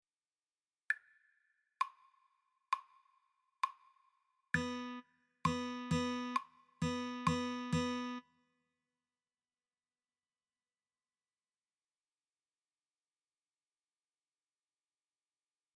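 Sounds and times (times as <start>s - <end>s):
guitar playing eighth notes with rests: 4.6s - 8.2s.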